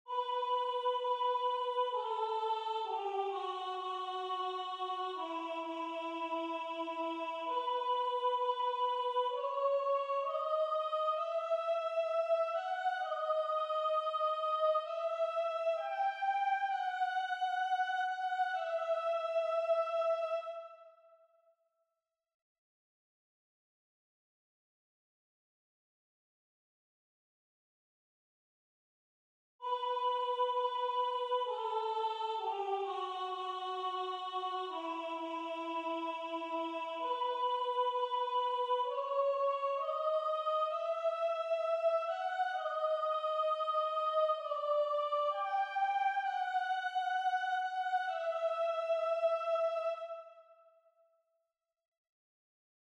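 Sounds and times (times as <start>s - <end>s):
mezzo-soprano singing: 0.1s - 20.7s, 29.6s - 50.2s.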